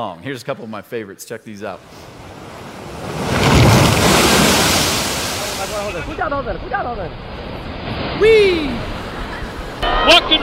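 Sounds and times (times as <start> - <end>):
speech: 0.0 - 2.2, 5.9 - 7.4, 8.0 - 8.9, 9.8 - 10.4
big ocean wave crashing: 1.8 - 10.4.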